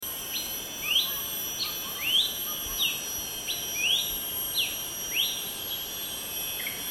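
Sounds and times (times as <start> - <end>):
background hiss: 0.0 - 6.9
Horsfield's babbler whistled calls: 0.3 - 3.0, 3.8 - 5.4.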